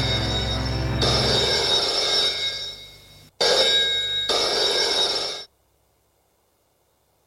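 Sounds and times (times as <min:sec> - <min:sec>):
telephone ringing with electric bell trill: 0:00.0 - 0:05.5.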